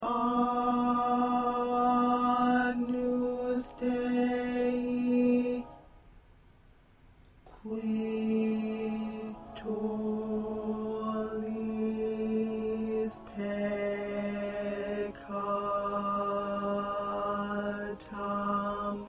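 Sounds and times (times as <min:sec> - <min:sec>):
tenor singing sacred classical piece: 0:00.0 - 0:05.9, 0:07.5 - 0:19.0.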